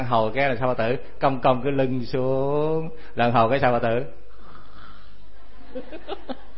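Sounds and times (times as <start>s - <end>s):
speech: 0.0s - 4.2s, 5.7s - 6.5s
voice imitating loud snoring: 4.3s - 5.3s
laughter: 5.5s - 6.5s.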